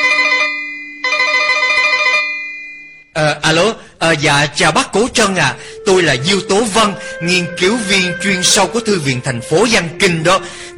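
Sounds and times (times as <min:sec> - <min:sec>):
electronic telephone ringing in an office: 0:00.0 - 0:03.1
speech: 0:04.1 - 0:10.7.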